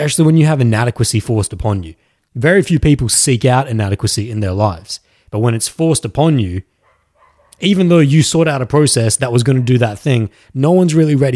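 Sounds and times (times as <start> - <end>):
speech: 0.0 - 6.7, 7.6 - 11.3
dog barking: 6.8 - 7.6, 9.5 - 10.0.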